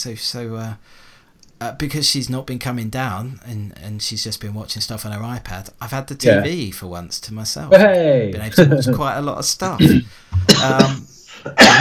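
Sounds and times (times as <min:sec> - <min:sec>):
speech: 0:00.0 - 0:11.7
harsh coughing: 0:09.8 - 0:11.7.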